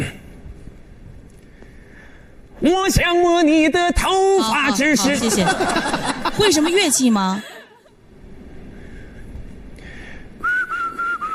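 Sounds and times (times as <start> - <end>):
low hum: 0.0 - 11.3
speech: 2.6 - 7.5
laughter: 4.4 - 7.9
person whistling during a talent-show audition: 10.4 - 11.3.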